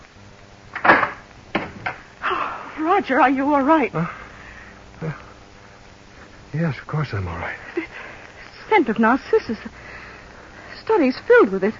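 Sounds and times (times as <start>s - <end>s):
door knocks and clicks as it swings and settles: 0.8s - 2.0s
speech: 2.8s - 4.2s, 5.0s - 5.2s, 6.5s - 8.0s, 8.7s - 9.8s, 10.9s - 11.7s.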